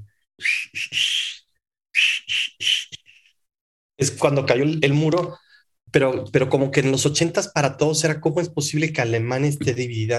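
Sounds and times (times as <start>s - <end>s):
speech: 0.4s - 1.1s, 4.1s - 10.1s
person whistling a familiar song melody: 0.4s - 3.3s.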